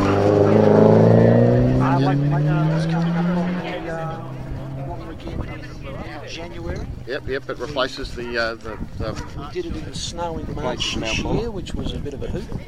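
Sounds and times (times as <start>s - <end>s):
Porsche 924 Turbo engine revving loudly: 0.0s - 9.5s
speech: 6.3s - 12.6s.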